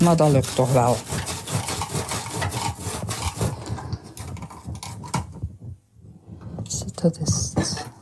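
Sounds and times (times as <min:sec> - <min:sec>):
speech: 0:00.0 - 0:01.4, 0:07.0 - 0:07.5
sharp kitchen knife pushed hard through a tough fennel bulb: 0:00.0 - 0:05.2.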